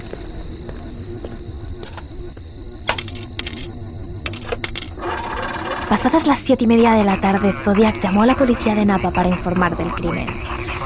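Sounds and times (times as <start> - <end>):
steady hum: 0.0 - 10.8
thin high-pitched whine: 0.0 - 10.8
money coins and car keys thrown down clinking and jingling: 2.9 - 3.7, 4.3 - 5.8
speech: 5.9 - 10.7.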